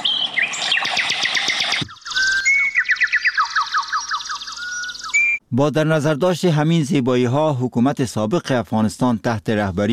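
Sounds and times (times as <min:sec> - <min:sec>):
birds singing melodiously: 0:00.0 - 0:05.4
speech: 0:05.5 - 0:09.9.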